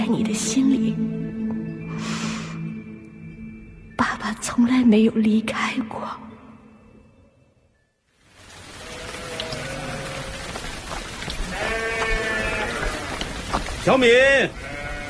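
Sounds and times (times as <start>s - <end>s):
speech: 0.1s - 1.2s, 4.3s - 6.3s, 13.8s - 14.7s
steady rain: 8.1s - 15.0s
sheep bleating: 8.8s - 10.6s, 11.4s - 13.4s, 14.1s - 15.0s.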